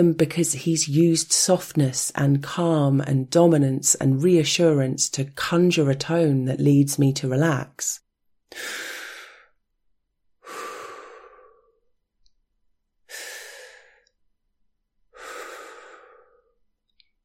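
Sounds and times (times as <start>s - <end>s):
speech: 0.0s - 8.9s
heavy breathing: 8.5s - 9.6s, 10.4s - 11.9s, 13.0s - 14.2s, 15.1s - 16.6s.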